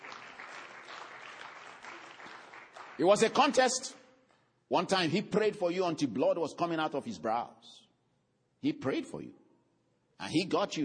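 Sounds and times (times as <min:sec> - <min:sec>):
congregation clapping during a church sermon: 0:00.0 - 0:03.8
speech: 0:03.0 - 0:04.0, 0:04.7 - 0:07.8, 0:08.6 - 0:09.4, 0:10.2 - 0:10.8.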